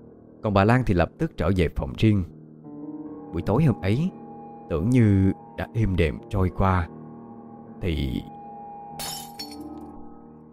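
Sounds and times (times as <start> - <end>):
speech: 0.4 - 2.4, 3.3 - 7.0, 7.8 - 8.3, 9.0 - 9.4
scattered glass fragments tinkling: 9.0 - 9.7
glass shattering in a karaoke room: 9.0 - 9.8.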